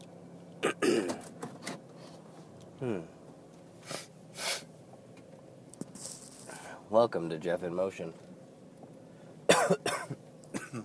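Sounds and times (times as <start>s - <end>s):
harsh coughs: 0.6s - 1.2s, 9.5s - 10.8s
speech: 2.8s - 3.2s, 6.9s - 8.3s.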